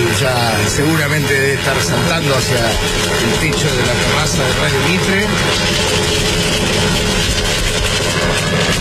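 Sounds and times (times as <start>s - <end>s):
arriving helicopter engine and rotor noise: 0.0s - 8.7s
speech: 0.2s - 7.4s, 8.2s - 8.7s.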